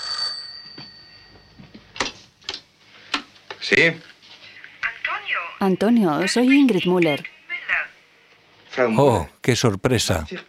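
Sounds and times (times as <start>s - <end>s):
telephone ringing: 0.0s - 1.7s
speech: 3.6s - 4.1s, 5.6s - 7.3s, 8.8s - 10.4s.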